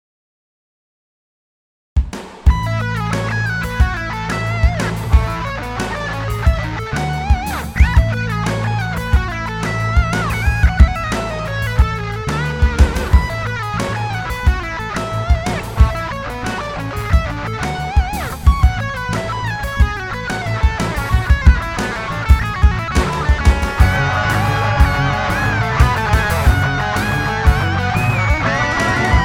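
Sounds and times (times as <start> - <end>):
midi drums: 2.0 - 29.2.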